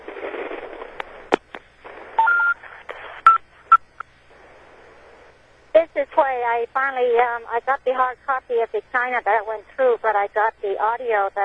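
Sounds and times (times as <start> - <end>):
hissy band-limited phone line: 0.0 - 5.4
touch-tone dialing keypad beeps on a phone: 2.2 - 2.6
speech: 6.1 - 11.4.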